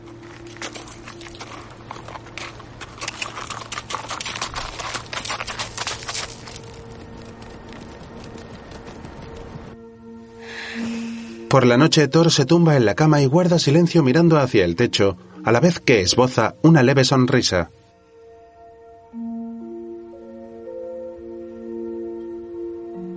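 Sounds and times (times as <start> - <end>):
horse hooves clip-clopping as riders mount and leave: 0.0 - 9.9
speech: 11.5 - 17.8.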